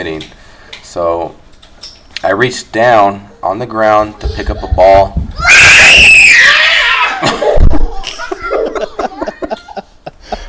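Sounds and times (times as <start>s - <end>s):
speech: 0.0s - 1.4s, 2.2s - 5.8s
person screaming high-pitched: 5.4s - 7.3s
laughter: 7.1s - 10.4s.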